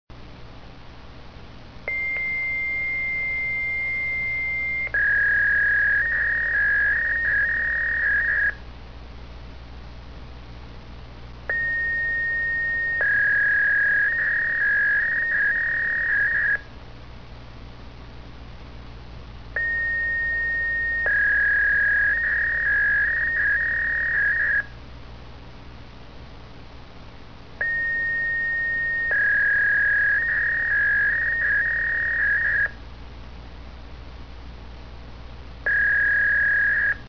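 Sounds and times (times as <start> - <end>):
fax machine: 1.9 - 8.6, 11.5 - 16.6, 19.6 - 24.7, 27.6 - 32.7, 35.7 - 37.0.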